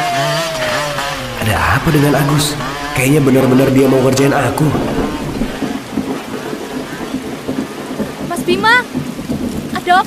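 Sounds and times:
heavy rain pouring down: 0:00.0 - 0:10.0
low rumbling undertone: 0:00.2 - 0:05.9
speech: 0:01.4 - 0:05.2, 0:09.9 - 0:10.0.

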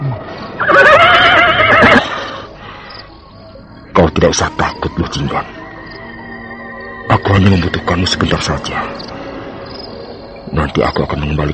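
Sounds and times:
horse neighing: 0:00.5 - 0:02.3
speech: 0:00.6 - 0:00.9, 0:04.2 - 0:05.6, 0:07.3 - 0:09.1, 0:10.5 - 0:11.5.

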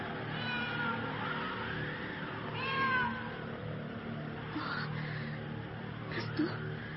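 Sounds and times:
steady low hum: 0:00.3 - 0:06.9
cat meowing eerily on the roof of a house: 0:00.4 - 0:01.0, 0:02.6 - 0:03.3.

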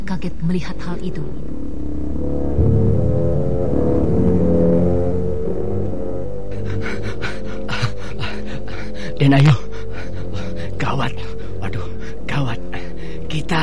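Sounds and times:
low droning musical background: 0:00.0 - 0:13.6
speech: 0:00.1 - 0:01.7, 0:09.2 - 0:09.6
heavy rapid panting breaths: 0:06.5 - 0:12.2.

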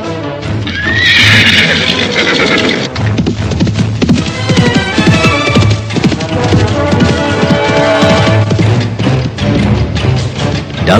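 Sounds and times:
horse whinnying: 0:00.6 - 0:03.0, 0:04.2 - 0:08.6
horse hooves pounding in a fast gallop: 0:00.6 - 0:10.9.

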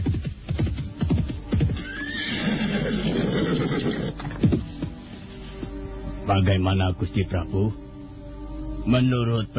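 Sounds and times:
horse hooves clip-clopping: 0:00.0 - 0:06.2
ridden horse neighing: 0:01.8 - 0:04.5
speech: 0:06.3 - 0:07.8, 0:08.8 - 0:09.5.

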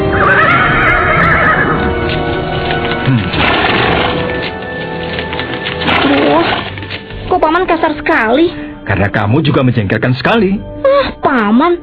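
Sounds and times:
horse carrying two riders whinnying: 0:00.1 - 0:02.2
horse hooves clip-clopping: 0:00.2 - 0:07.2
speech: 0:08.5 - 0:11.8.

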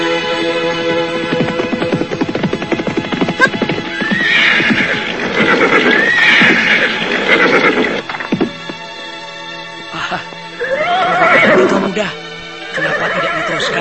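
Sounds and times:
horse hooves clip-clopping as riders travel on horseback: 0:00.2 - 0:09.0
horses neighing: 0:01.0 - 0:08.8, 0:10.6 - 0:12.1, 0:12.7 - 0:13.8.

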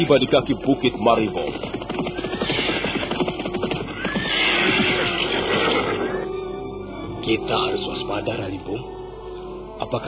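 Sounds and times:
speech: 0:00.0 - 0:01.8, 0:07.2 - 0:09.0, 0:09.8 - 0:10.0
horse hooves thudding as horses are ridden through the night: 0:00.2 - 0:06.2.

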